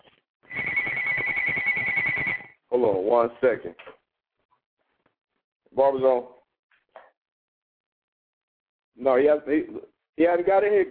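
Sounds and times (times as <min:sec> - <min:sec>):
telephone ringing with electronic warbling tone: 0:00.5 - 0:02.6
speech: 0:02.8 - 0:03.9, 0:05.8 - 0:06.4, 0:09.0 - 0:10.8.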